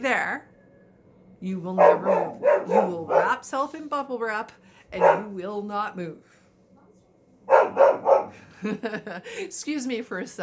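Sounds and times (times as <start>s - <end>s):
speech: 0.0s - 0.5s, 1.4s - 6.4s, 8.3s - 10.4s
puppy barking: 1.8s - 3.4s, 5.0s - 5.4s, 7.5s - 8.4s
laughter: 8.4s - 9.5s.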